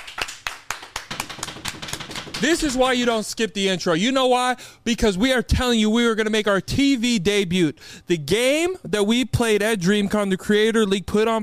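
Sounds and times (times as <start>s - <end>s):
short round of applause with crisp hand claps: 0.0s - 2.8s
speech: 2.4s - 11.4s.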